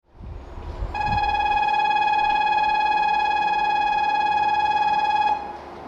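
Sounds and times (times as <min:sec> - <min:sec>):
bell ringing in Fukushima: 0:01.0 - 0:05.5.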